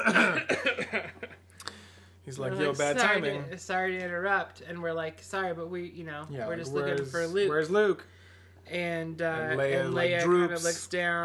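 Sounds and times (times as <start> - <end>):
person coughing: 0.0 - 1.0
speech: 2.4 - 8.1, 8.7 - 11.2.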